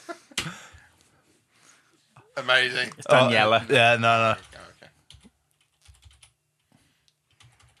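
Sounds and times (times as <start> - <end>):
speech: 2.4 - 4.5
typing on a computer keyboard: 5.1 - 6.4, 7.3 - 7.7.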